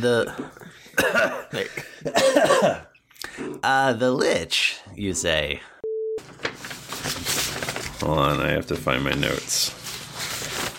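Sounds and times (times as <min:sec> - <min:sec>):
speech: 0:00.0 - 0:05.7, 0:08.0 - 0:09.8
person coughing: 0:00.9 - 0:03.0.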